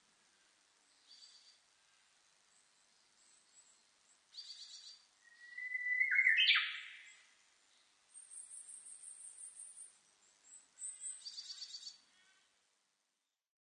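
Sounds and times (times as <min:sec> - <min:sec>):
Japanese bush warbler song: 0:00.0 - 0:12.4
thin high chirps from other birds: 0:04.4 - 0:07.2.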